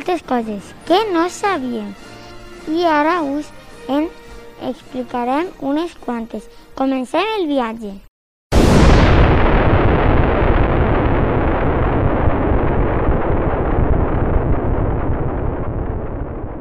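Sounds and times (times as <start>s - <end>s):
speech: 0.1s - 8.1s
massive explosion: 8.5s - 16.5s.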